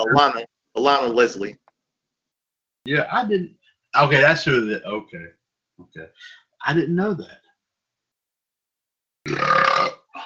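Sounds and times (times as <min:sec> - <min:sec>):
speech: 0:00.0 - 0:01.6, 0:02.8 - 0:07.4, 0:09.2 - 0:10.0
loud burp after drinking Pepsi: 0:09.3 - 0:10.2.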